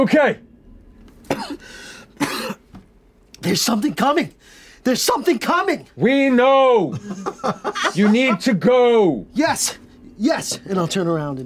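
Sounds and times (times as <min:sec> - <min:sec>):
speech: 0:00.0 - 0:00.4, 0:03.4 - 0:11.4
throat clearing: 0:01.3 - 0:01.6
person coughing: 0:01.3 - 0:02.7
breathy inhale: 0:01.6 - 0:02.2, 0:04.4 - 0:04.8
laughter: 0:06.2 - 0:08.6.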